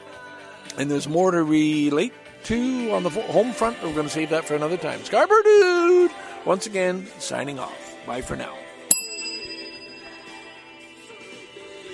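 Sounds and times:
speech: 0:00.8 - 0:08.6
bell chime ringing: 0:08.9 - 0:11.0.

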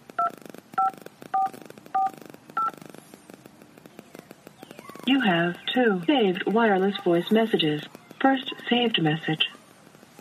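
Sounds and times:
telephone keypad tones entering a voicemail password: 0:00.2 - 0:02.8
speech: 0:05.1 - 0:09.5.

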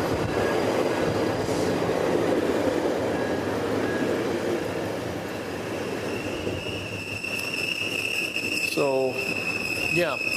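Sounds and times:
commuter train rumbling past: 0:00.0 - 0:10.3
faint high metallic squeals and whines of a commuter train: 0:05.5 - 0:10.3
speech: 0:08.8 - 0:09.4, 0:10.0 - 0:10.3.

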